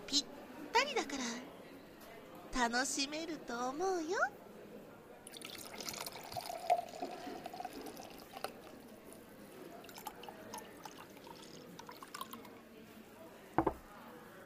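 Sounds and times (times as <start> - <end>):
speech: 2.6 - 4.4
champagne pouring into a glass: 5.2 - 12.8
glass clink: 5.4 - 8.6, 13.6 - 13.8.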